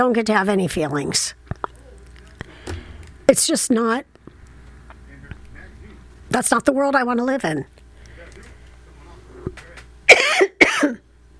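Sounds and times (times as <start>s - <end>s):
speech: 0.0s - 1.4s, 3.3s - 4.2s, 6.3s - 7.8s
loud harsh coughs: 10.1s - 11.0s.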